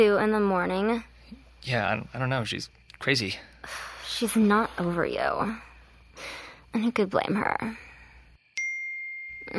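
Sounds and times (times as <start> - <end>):
speech: 0.0 - 7.8
phone text message alert ding: 8.6 - 9.5.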